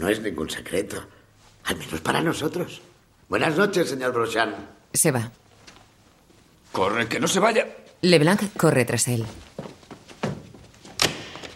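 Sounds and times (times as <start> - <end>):
speech: 0.0 - 5.4, 6.7 - 9.7
door being shut: 10.2 - 11.5.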